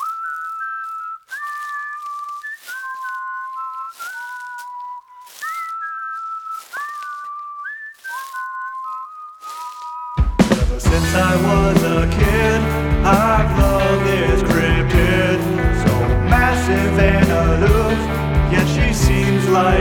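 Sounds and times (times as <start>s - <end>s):
melodic whistled tune of a song opening: 0.0s - 19.7s.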